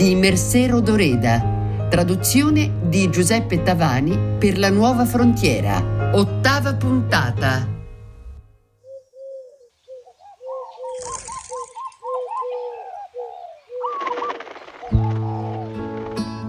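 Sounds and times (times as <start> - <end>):
speech: 0.0 - 7.7
pigeons cooing: 8.8 - 16.4.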